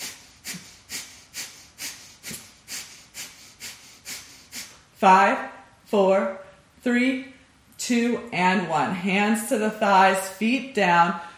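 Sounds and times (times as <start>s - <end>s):
sharp nasal exhalations of yoga breath-of-fire breathing: 0.0s - 4.9s
speech: 5.0s - 11.3s.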